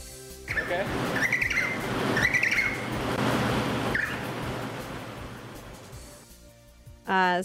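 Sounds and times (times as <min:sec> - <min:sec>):
emperor penguin chick squawking in high wavering peeps: 0:00.5 - 0:02.9, 0:03.9 - 0:04.3
constant windy rumble: 0:00.5 - 0:06.2
speech: 0:00.7 - 0:01.1.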